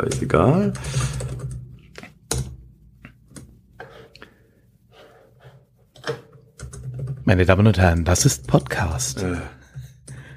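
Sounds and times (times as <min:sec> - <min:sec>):
speech: 0:00.0 - 0:01.2, 0:07.3 - 0:09.6
typing on a computer keyboard: 0:00.1 - 0:01.6, 0:06.6 - 0:07.2.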